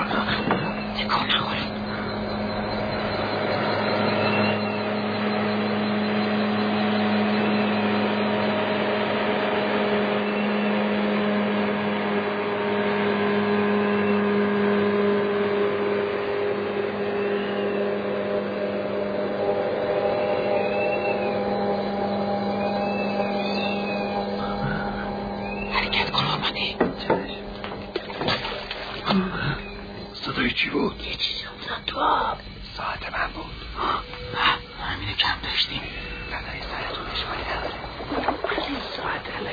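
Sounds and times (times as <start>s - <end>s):
boat engine droning: 0.0s - 39.5s.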